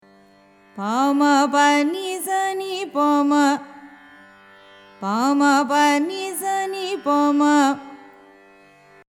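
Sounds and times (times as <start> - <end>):
carnatic music in raga mandari: 0.0 - 9.1.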